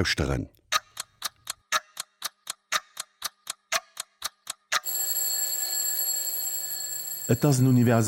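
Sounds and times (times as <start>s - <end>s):
speech: 0.0s - 0.6s, 7.3s - 8.0s
clock ticking in a quick steady rhythm: 0.7s - 5.6s, 7.2s - 8.0s
continuous bright ringing: 4.8s - 8.0s.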